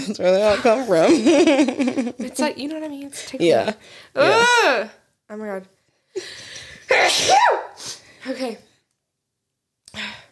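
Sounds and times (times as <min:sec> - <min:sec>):
speech: 0:00.0 - 0:08.7
sneeze: 0:06.9 - 0:08.0.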